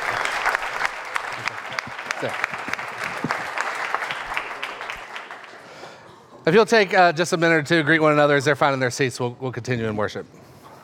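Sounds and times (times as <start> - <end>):
crowd clapping: 0.0 - 5.9
speech: 2.2 - 2.6, 6.5 - 10.4.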